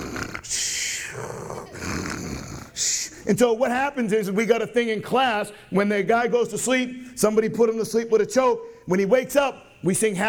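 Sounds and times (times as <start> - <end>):
person imitating snoring of someone choked unconscious: 0.0 - 2.8
speech: 3.3 - 10.2.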